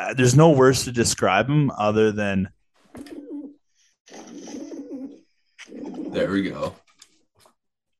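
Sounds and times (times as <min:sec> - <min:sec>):
speech: 0:00.1 - 0:03.1, 0:06.1 - 0:06.8
pigeon cooing sound effect from a phone soundboard: 0:03.0 - 0:06.8.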